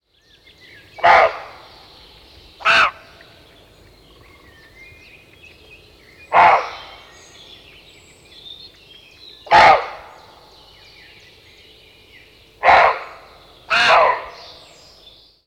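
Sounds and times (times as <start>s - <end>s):
animal voices: 0.9s - 2.0s, 2.6s - 4.6s, 6.2s - 7.6s, 9.4s - 10.6s, 12.6s - 14.9s.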